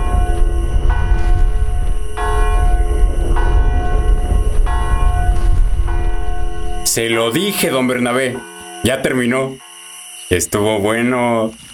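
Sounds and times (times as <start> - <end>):
deep continuous low rumble: 0.0 - 6.9
church bells ringing during an earthquake: 0.0 - 11.4
speech: 7.0 - 9.6, 10.3 - 11.7.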